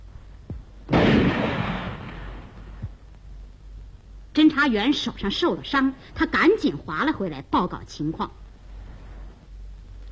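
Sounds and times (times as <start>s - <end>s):
gunshot fired at a small boat: 0.9s - 2.8s
speech: 4.4s - 8.4s.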